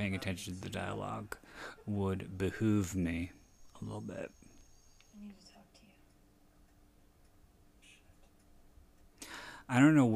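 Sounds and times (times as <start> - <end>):
speech: 0.0 - 4.4, 5.2 - 5.5, 9.7 - 10.1
low hiss: 0.0 - 10.1
clock ticking: 5.3 - 10.1.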